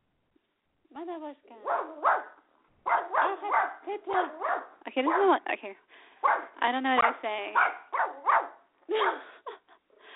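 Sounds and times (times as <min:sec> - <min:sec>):
speech: 0:01.0 - 0:02.4, 0:03.0 - 0:09.4
dog barking: 0:01.6 - 0:05.4, 0:06.2 - 0:08.7.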